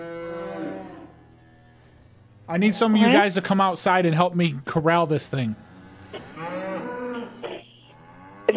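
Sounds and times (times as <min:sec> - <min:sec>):
loose cow mooing while being chased: 0:00.0 - 0:01.3, 0:05.6 - 0:08.5
speech: 0:02.5 - 0:05.7.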